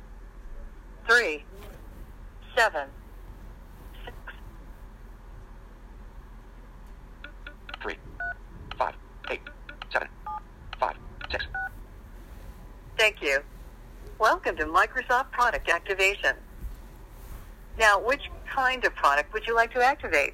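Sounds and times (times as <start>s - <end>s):
speech: 1.1s - 1.6s, 2.6s - 3.0s, 13.0s - 13.5s, 14.2s - 16.4s, 17.8s - 20.3s
touch-tone keypad DTMF dual-tone dialing beeps: 7.2s - 8.4s, 9.2s - 10.4s, 11.2s - 11.7s.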